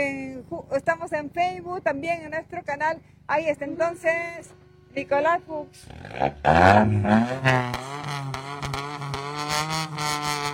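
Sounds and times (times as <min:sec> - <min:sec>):
speech: 0:00.0 - 0:08.6
rally car engine revving hard at the start point of a rally: 0:05.7 - 0:10.5.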